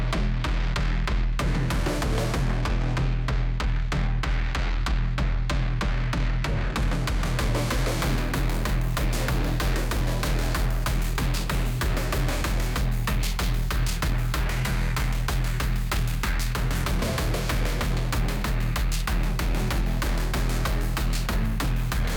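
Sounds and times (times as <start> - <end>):
tense dramatic music: 0.2 - 22.1.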